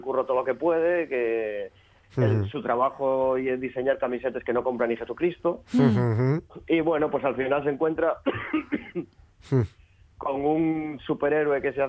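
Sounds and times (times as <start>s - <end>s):
speech: 0.1s - 11.8s
person coughing: 5.7s - 6.4s, 8.3s - 9.7s.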